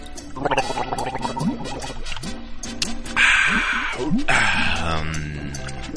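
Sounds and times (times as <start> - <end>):
person gargling water to clear the throat: 0.4 - 1.9, 3.4 - 5.9.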